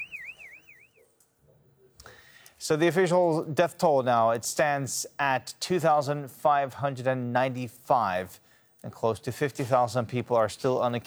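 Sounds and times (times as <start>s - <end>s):
warbling electronic building collapse warning alarm during a rescue in rubble: 0.0s - 1.0s
low noise: 0.0s - 11.0s
speech: 2.7s - 11.0s.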